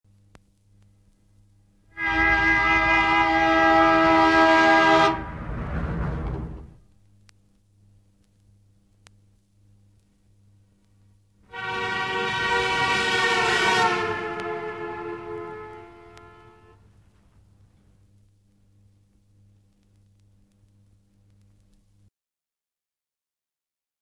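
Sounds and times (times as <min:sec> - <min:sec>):
car horn honking as car passes: 0:02.0 - 0:05.4, 0:11.5 - 0:16.8.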